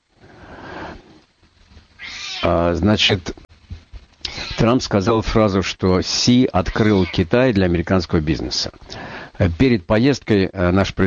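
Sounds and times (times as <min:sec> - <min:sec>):
cat meowing in a studio: 0:02.0 - 0:02.5, 0:04.3 - 0:04.6, 0:06.6 - 0:07.2
speech: 0:02.4 - 0:03.4, 0:04.6 - 0:11.0.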